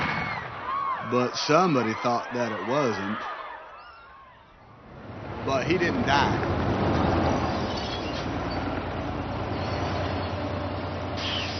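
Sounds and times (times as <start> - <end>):
speech: 1.1 - 3.4, 5.5 - 6.6
bus engine rumbling as it pulls up at a stop: 4.7 - 11.5.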